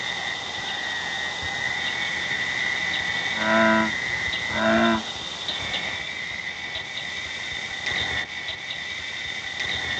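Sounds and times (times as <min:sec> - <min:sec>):
steady insect buzzing: 0:00.1 - 0:09.9
true frog producing short harmonic croaks: 0:00.2 - 0:07.1, 0:09.6 - 0:09.9.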